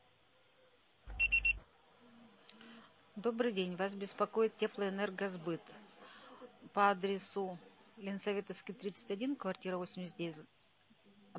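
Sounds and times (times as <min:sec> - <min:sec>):
voicemail beep before recording a message: 0:01.1 - 0:01.6
speech: 0:03.2 - 0:05.9, 0:06.7 - 0:10.6.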